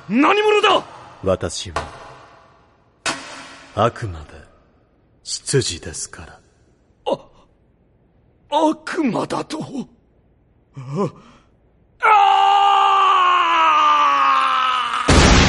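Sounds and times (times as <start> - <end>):
speech: 0.1 - 1.9, 3.8 - 4.5, 5.2 - 6.4, 8.5 - 10.0, 10.8 - 11.4
man gasping: 10.8 - 11.6
man screaming: 12.0 - 15.3.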